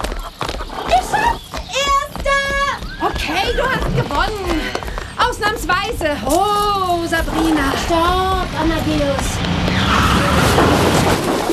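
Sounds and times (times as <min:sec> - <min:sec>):
galloping hoofbeats of horses ridden in a race: 0:00.0 - 0:11.5
horses whinnying neighs: 0:00.0 - 0:11.5.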